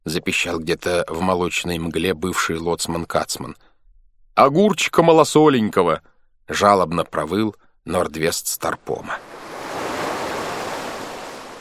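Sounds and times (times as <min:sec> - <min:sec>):
speech: 0:00.1 - 0:03.7, 0:04.4 - 0:09.3
sea waves splashing: 0:09.1 - 0:11.6.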